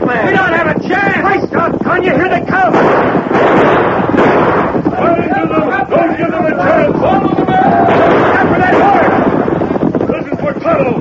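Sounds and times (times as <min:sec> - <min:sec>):
voices: 0:00.0 - 0:03.4, 0:04.0 - 0:10.9
gunfire in a western shootout: 0:02.7 - 0:05.5, 0:07.7 - 0:09.8.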